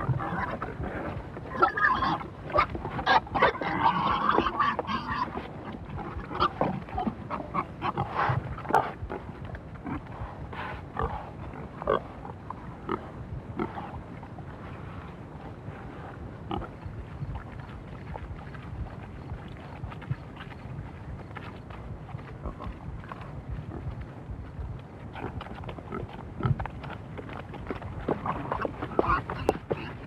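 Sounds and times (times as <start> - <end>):
pigs grunting and snuffling while feeding: 0.0 - 30.0
rough crunching background: 0.0 - 30.0.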